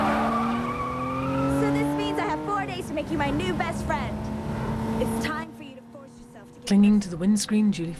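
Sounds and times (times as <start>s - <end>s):
car tire squeal as a car swerves and skids: 0.0s - 2.4s
car engine speeding erratically: 0.0s - 7.9s
speech: 3.0s - 4.2s, 5.0s - 5.4s, 6.7s - 7.9s.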